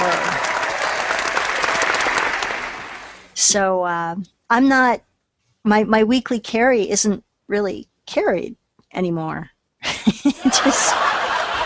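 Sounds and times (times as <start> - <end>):
laughter: 0.0 - 0.6, 9.8 - 11.6
crowd applauding: 0.0 - 3.3, 10.6 - 11.6
speech: 3.4 - 11.4.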